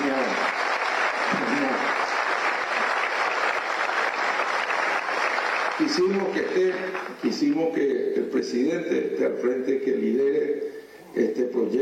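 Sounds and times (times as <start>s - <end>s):
audience applause for a president at a public event: 0.0s - 7.5s
speech: 5.8s - 11.7s.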